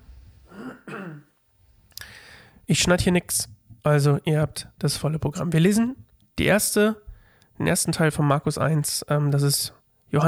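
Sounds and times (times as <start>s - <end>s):
person clearing their throat: 0.5s - 1.4s
short breathy exhale: 2.0s - 2.6s
speech: 2.7s - 7.0s, 7.6s - 10.2s.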